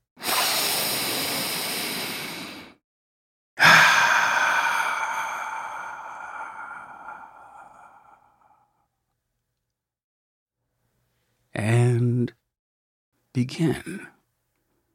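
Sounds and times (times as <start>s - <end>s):
deep breaths: 0.2s - 2.8s, 3.6s - 9.0s
speech: 13.4s - 14.1s.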